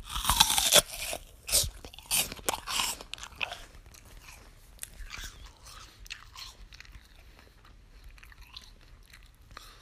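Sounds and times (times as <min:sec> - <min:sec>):
crunching bites into a crisp apple: 0:00.0 - 0:06.6
wet open-mouthed chewing of apple: 0:00.0 - 0:09.8.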